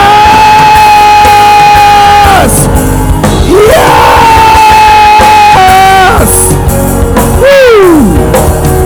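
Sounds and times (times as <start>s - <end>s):
person whooping: 0.0s - 2.7s, 3.4s - 6.6s, 7.3s - 8.3s
large crowd shouting and cheering very loudly: 0.0s - 8.7s.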